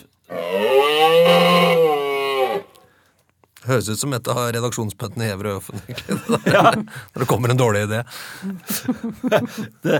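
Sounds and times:
person imitating a moose call in an animal-sound quiz: 0:00.3 - 0:02.8
speech: 0:03.8 - 0:09.9
laughter: 0:05.7 - 0:07.1, 0:08.5 - 0:09.9.

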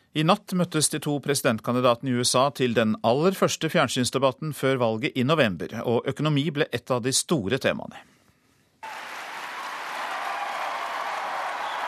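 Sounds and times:
speech: 0:00.2 - 0:08.2
audience applauding at the first US presidential debate of 2012 in Denver: 0:08.8 - 0:11.8.

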